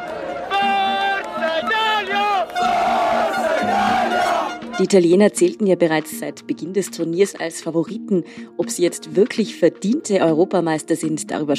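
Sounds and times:
dense crowd of football fans in Rome roaring and chanting, celebrating: 0.0 - 4.8
speech: 4.8 - 11.5.

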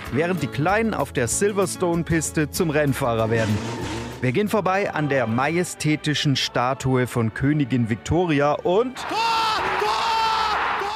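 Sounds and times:
speech: 0.1 - 9.4
person shouting in a bumper-car football arena: 9.0 - 10.9
person crying out in a bumper-car football arena: 9.1 - 10.9.

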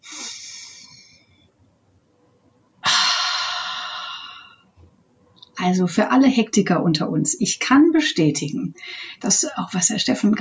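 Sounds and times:
deliberate deep breath: 0.0 - 1.4, 2.8 - 4.6
speech: 5.6 - 10.3.

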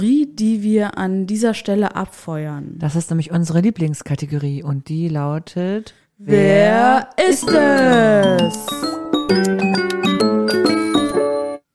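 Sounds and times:
speech: 0.0 - 10.2
podcast segment jingle of chiming bell-like notes: 7.3 - 11.6.

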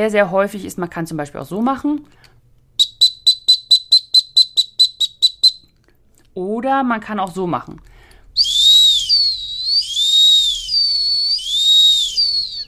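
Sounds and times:
speech: 0.0 - 2.3, 6.4 - 7.9
short shrill dog-training whistle blasts: 2.8 - 5.7, 8.4 - 12.6.

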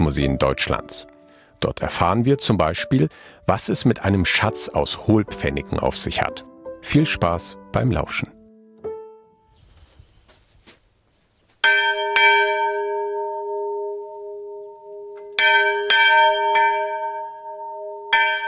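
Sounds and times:
speech: 0.1 - 8.4
small church bell rung by rope tolling outdoors: 11.6 - 18.4.

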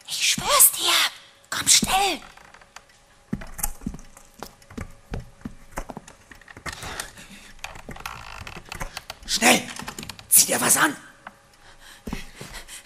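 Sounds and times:
speech: 1.7 - 2.4, 9.4 - 9.6, 10.5 - 11.1
door handle or lock being worked: 2.2 - 10.3.

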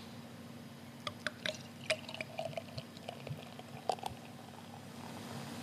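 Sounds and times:
beer pouring into a glass: 1.1 - 5.4.

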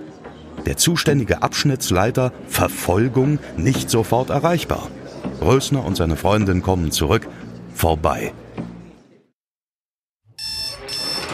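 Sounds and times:
speech: 0.6 - 8.4
alarm clock ringing: 10.4 - 11.3.

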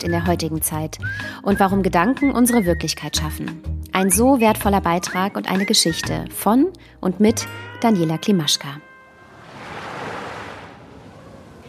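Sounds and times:
speech: 0.0 - 8.9
ocean surf rushing: 9.1 - 11.6
steady wind noise: 9.2 - 11.6.

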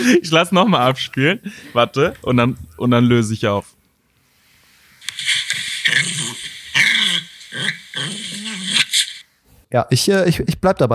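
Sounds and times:
speech: 0.0 - 3.8, 9.7 - 10.9
dog growling and snarling excitedly during tug play: 5.8 - 9.0.

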